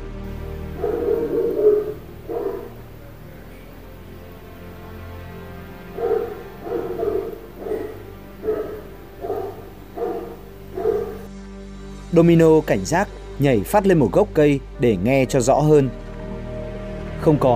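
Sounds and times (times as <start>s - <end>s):
dog barking loudly: 0.7s - 3.8s, 5.9s - 11.3s
speech: 12.2s - 16.0s, 17.2s - 17.5s.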